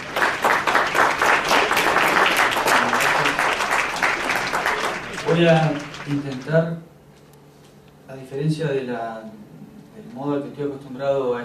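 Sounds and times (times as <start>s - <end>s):
audience applause at a psychology lecture: 0.0s - 6.7s
speech: 5.4s - 6.9s, 8.1s - 11.4s.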